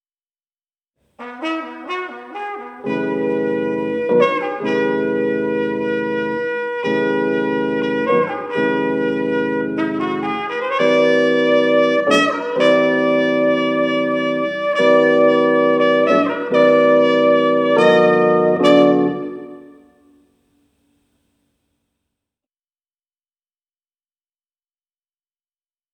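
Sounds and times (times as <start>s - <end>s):
Fender Rhodes electric piano jingle: 1.8s - 20.1s.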